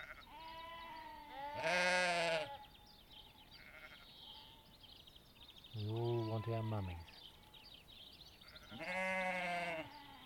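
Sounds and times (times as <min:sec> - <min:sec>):
lambs bleating during lambing season: 0:00.0 - 0:02.6, 0:03.6 - 0:04.6, 0:08.5 - 0:10.2
speech: 0:06.4 - 0:07.2.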